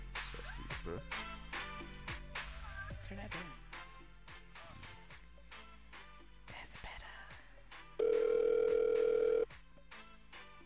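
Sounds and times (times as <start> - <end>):
speech: 0.9 - 1.2, 3.1 - 3.6
telephone dial tone: 8.0 - 9.5.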